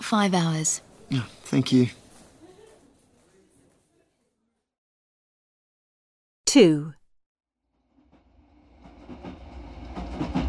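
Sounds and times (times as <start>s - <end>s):
speech: 0.1s - 2.0s, 6.5s - 7.0s
train rumbling along the rails: 8.2s - 10.4s.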